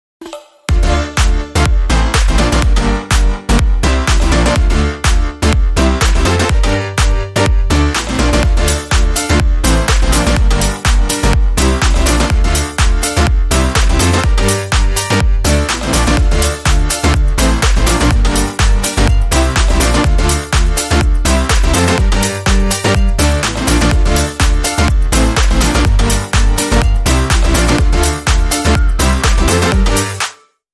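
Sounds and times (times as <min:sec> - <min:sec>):
rhythm: 0:00.2 - 0:30.4
tropical whistle melody: 0:28.6 - 0:29.4.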